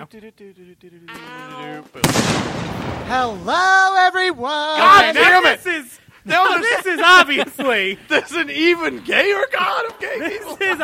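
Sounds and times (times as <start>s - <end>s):
speech: 0.0s - 10.8s
grenade explosion in a video game: 2.0s - 3.5s
laughter: 4.8s - 10.8s.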